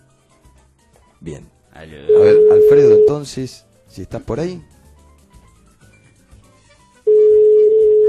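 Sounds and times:
speech: 1.2 - 4.7
telephone line ringing on a call being placed: 2.1 - 3.2, 7.1 - 8.0.

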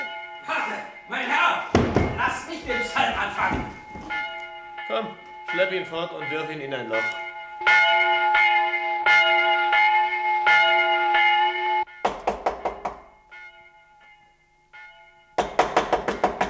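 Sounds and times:
church bell ringing: 0.0 - 12.0, 12.6 - 16.4
knocking on a door: 1.7 - 3.9, 12.0 - 13.0, 15.4 - 16.4
speech: 4.9 - 7.8.

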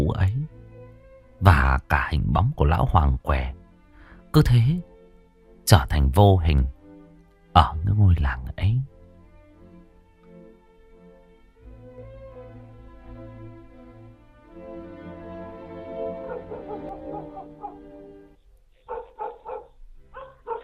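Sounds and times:
speech: 1.4 - 3.6, 4.4 - 4.9, 5.7 - 6.8, 7.6 - 8.9
dog barking at night at the front of a village house: 16.1 - 18.0, 18.8 - 20.6.

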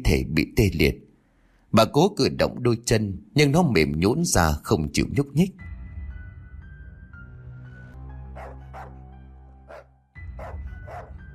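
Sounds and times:
speech: 0.0 - 1.0, 1.7 - 5.7
black dog barking: 8.3 - 9.0, 9.7 - 11.2.

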